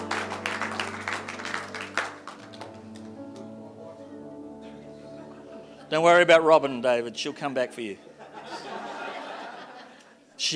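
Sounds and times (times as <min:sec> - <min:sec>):
church audience clapping during a morning service: 0:00.0 - 0:03.6
laughter: 0:04.6 - 0:06.3, 0:07.2 - 0:10.2
speech: 0:05.9 - 0:08.1.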